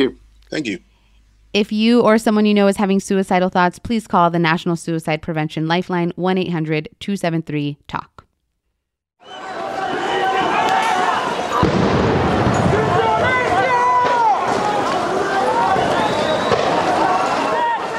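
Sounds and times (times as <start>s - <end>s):
speech: 0.0s - 0.9s, 1.5s - 8.1s
protesters shouting while running from police in Colombia: 9.2s - 17.9s
rough noisy commotion of protesters: 9.2s - 17.9s.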